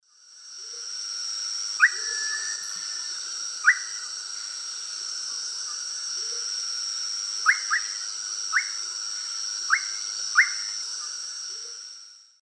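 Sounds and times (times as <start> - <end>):
Psarocolius angustifrons calls in the Eastern Lowlands of South America: 1.8 - 4.1, 7.4 - 8.8, 9.7 - 11.8.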